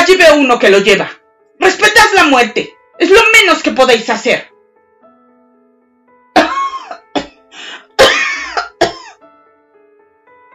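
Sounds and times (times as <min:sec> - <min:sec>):
speech: 0:00.1 - 0:04.5
harsh raspy wheezy coughing fit: 0:06.4 - 0:09.2.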